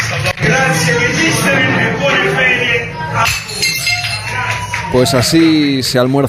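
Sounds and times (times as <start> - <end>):
hubbub of shouting voices in a busy trattoria: 0.4 - 5.7
ringing clinks of crockery: 3.2 - 4.6
plates thrown to a hard floor shattering in a busy trattoria: 3.3 - 4.3
speech: 4.9 - 6.2.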